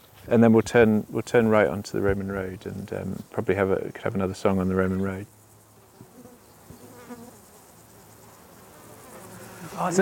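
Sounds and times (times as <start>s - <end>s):
speech: 0.2s - 5.4s, 9.8s - 10.0s
bees buzzing around flowering marjoram: 4.3s - 10.0s.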